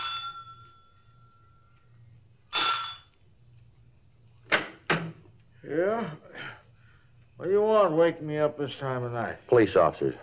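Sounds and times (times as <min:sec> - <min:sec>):
front doorbell chime of a large house: 0:00.0 - 0:01.7, 0:02.5 - 0:03.1
low steady hum: 0:00.0 - 0:10.2
speech: 0:05.6 - 0:06.3, 0:07.4 - 0:10.2.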